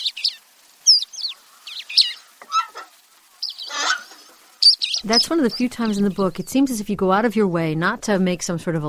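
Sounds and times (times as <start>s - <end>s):
pair of crested larks calling with whistles and buzzy trills: 0.0s - 2.8s, 3.4s - 6.2s
speech: 5.0s - 8.8s.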